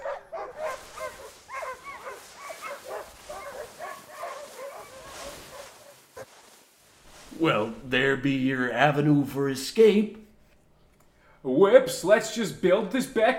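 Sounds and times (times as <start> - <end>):
several dogs barking: 0.0 - 6.3
speech: 7.4 - 10.2, 11.6 - 13.3.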